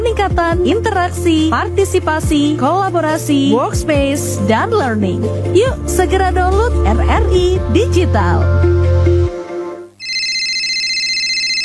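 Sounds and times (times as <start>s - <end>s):
speech: 0.2s - 8.8s
mobile phone ringtone for an incoming call: 10.0s - 11.6s.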